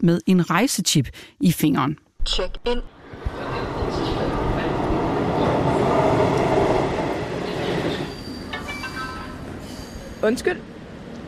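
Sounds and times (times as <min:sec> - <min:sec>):
speech: 0:00.0 - 0:04.1, 0:10.2 - 0:10.7
trains rumbling through a train station: 0:02.9 - 0:11.2
train wheels squealing: 0:07.9 - 0:10.4.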